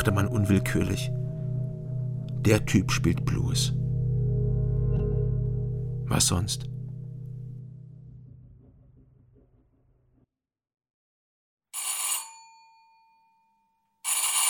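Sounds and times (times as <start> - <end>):
speech: 0.0 - 1.2, 2.4 - 3.8, 6.1 - 6.7
low chord: 0.0 - 10.2
telephone bell ringing unanswered: 11.8 - 13.4, 14.0 - 14.4.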